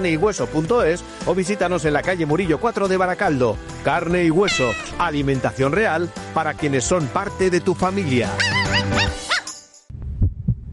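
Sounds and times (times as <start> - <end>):
speech: 0.0 - 9.2
heartbeat sound effect lub-dub thumps: 9.9 - 10.7.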